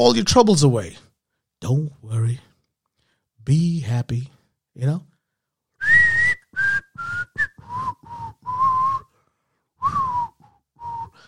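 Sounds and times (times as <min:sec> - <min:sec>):
speech: 0:00.0 - 0:01.0, 0:01.6 - 0:02.5, 0:03.4 - 0:05.1
person whistling a short bouncy melody: 0:05.8 - 0:11.2.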